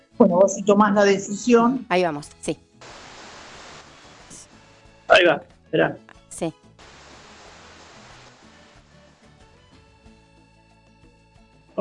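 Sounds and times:
speech: 0:00.2 - 0:02.7, 0:05.1 - 0:06.6
ocean waves roaring: 0:02.8 - 0:04.8, 0:06.8 - 0:09.2.

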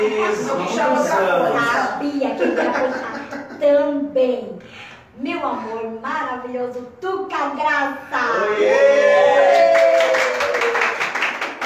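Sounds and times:
speech: 0:00.0 - 0:10.8
laughter: 0:02.2 - 0:03.8
sustained vocal whoop: 0:08.3 - 0:10.9
audience applause: 0:09.3 - 0:11.6.

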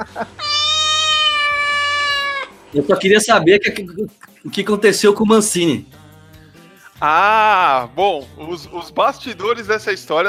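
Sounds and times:
laughter: 0:00.0 - 0:00.4
speech: 0:00.0 - 0:00.4, 0:02.7 - 0:06.1, 0:07.0 - 0:10.2
long drawn-out cat meow: 0:00.3 - 0:02.6.

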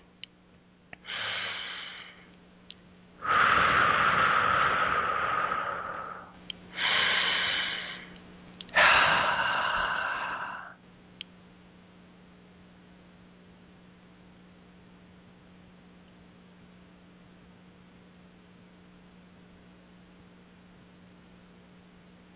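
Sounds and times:
slow deep breathing: 0:01.0 - 0:02.3, 0:03.2 - 0:10.8.

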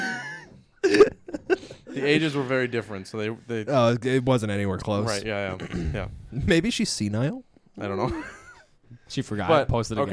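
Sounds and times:
speech: 0:02.0 - 0:08.4, 0:09.1 - 0:10.1
person coughing harshly: 0:05.6 - 0:06.0.

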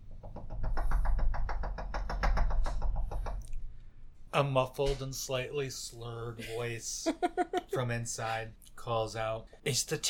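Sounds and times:
rapid light knocking on a door: 0:00.0 - 0:03.4
speech: 0:04.4 - 0:10.0.

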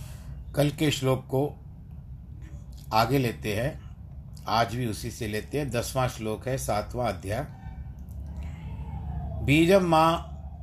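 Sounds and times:
low rumble of traffic or room noise: 0:00.0 - 0:10.6
speech: 0:00.6 - 0:01.6, 0:02.9 - 0:03.8, 0:04.5 - 0:07.6, 0:09.5 - 0:10.3
police car siren wailing outside: 0:07.0 - 0:10.6.

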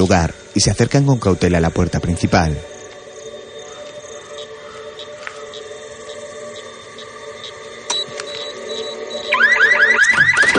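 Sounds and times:
speech: 0:00.0 - 0:02.7
electronic alarm at a house's front door set off by a hidden floor trigger: 0:04.4 - 0:10.5.

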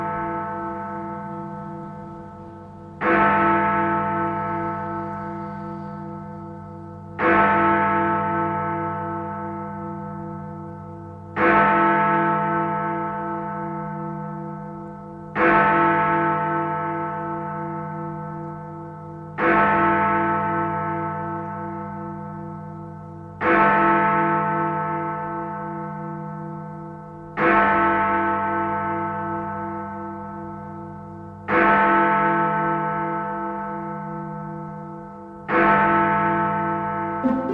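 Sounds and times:
large clock tower bell striking the hour: 0:00.0 - 0:37.5.

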